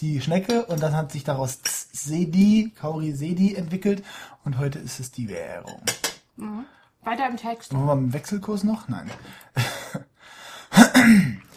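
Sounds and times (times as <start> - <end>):
speech: 0.0 - 10.0
person clearing throat: 10.7 - 11.5.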